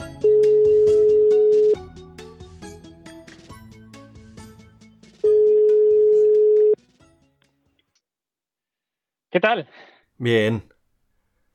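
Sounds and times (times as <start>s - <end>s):
ringback tone of an outgoing telephone call: 0.2s - 1.8s, 5.3s - 6.8s
speech: 9.4s - 10.7s.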